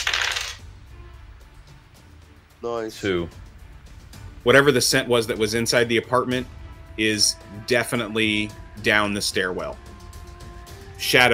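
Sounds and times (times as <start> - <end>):
five dice clattering across a hard surface: 0.0 - 0.6
speech: 2.6 - 3.4, 4.4 - 9.9, 11.0 - 11.3.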